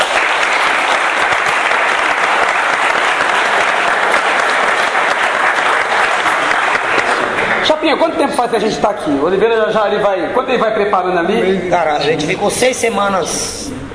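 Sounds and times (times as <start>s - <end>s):
audience applause: 0.0s - 8.2s
speech: 7.9s - 13.8s.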